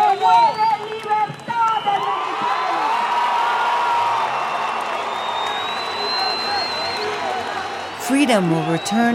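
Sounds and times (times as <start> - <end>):
large crowd of opposition supporters at a rally in Venezuela roaring and cheering: 0.0 - 9.1
speech: 8.2 - 9.1.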